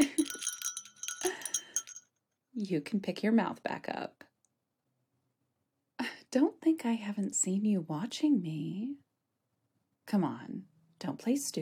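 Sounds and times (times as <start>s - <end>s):
little bells on high-heeled pump shoes jingling: 0.0s - 2.0s
speech: 2.6s - 4.3s, 6.3s - 9.1s, 10.1s - 11.6s.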